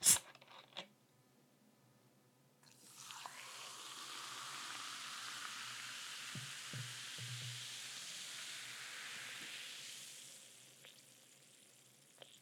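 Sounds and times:
soda poured over lemon in a glass: 2.6 - 12.4.

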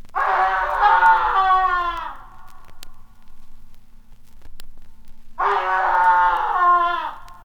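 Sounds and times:
man screaming: 0.2 - 2.4, 5.4 - 7.4.

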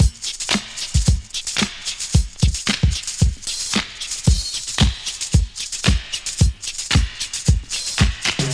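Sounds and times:
drum loop: 0.0 - 8.5.

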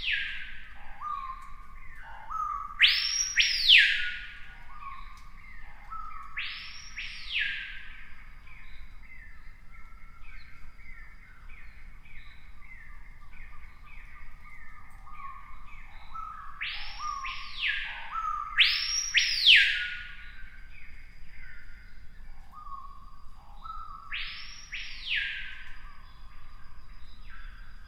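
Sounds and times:
screaming piha loud arching whistled notes: 0.0 - 27.8.

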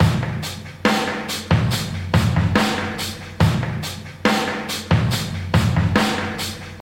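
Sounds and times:
kick drum tuned to D sharp: 0.0 - 0.5, 1.5 - 2.8, 3.4 - 3.9, 4.9 - 6.1
71 bpm breakbeat drum loop in D sharp: 0.0 - 6.7.

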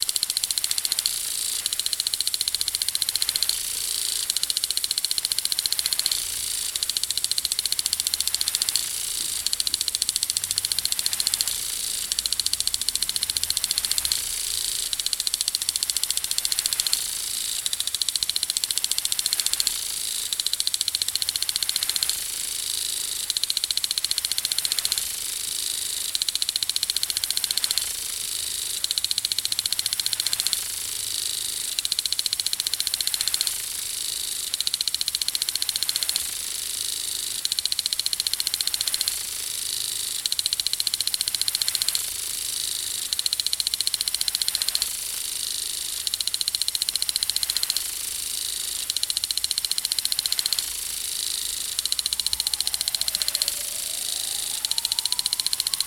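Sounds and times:
plastic sprinkler: 0.0 - 55.8.

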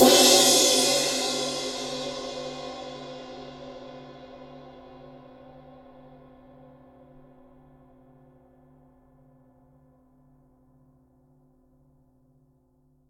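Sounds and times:
crash cymbal single hit in C sharp key: 0.0 - 4.6.

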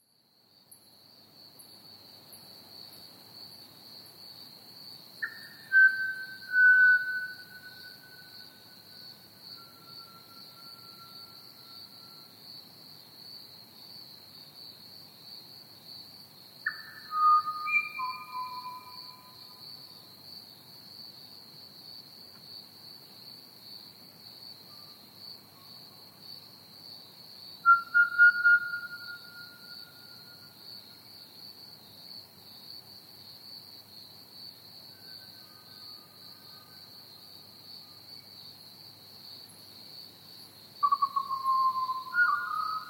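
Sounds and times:
crickets chirping: 0.0 - 42.8
pied butcherbird singing: 5.2 - 8.2, 16.7 - 19.4, 27.7 - 30.2, 40.8 - 42.8.

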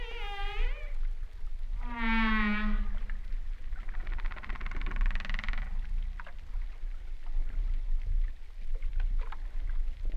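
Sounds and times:
humpback whale song: 0.0 - 5.8
constant low rumble: 0.0 - 10.1.

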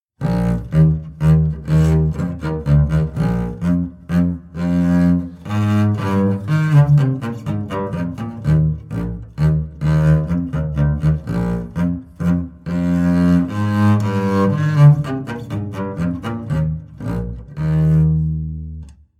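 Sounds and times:
acoustic double bass classical sequence: 0.2 - 19.1.

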